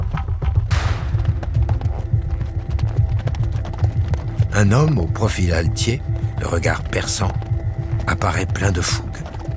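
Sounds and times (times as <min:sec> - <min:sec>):
horses galloping with heavy hoofbeats: 0:00.0 - 0:09.5
gunshot crack: 0:00.7 - 0:01.4
speech: 0:04.6 - 0:07.4, 0:08.1 - 0:09.1.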